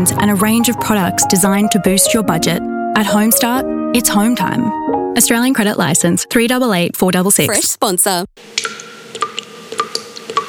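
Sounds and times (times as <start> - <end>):
speech: 0.0 - 9.3
water dripping from a leaking tap: 8.5 - 10.4.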